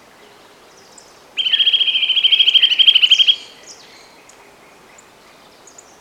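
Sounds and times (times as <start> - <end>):
Eurasian nuthatch Sitta europaea trilling: 1.4 - 3.5.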